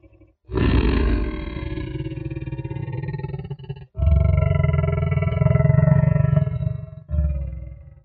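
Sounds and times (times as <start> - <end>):
reconstructed T. rex rasping roar: 0.0 - 7.8.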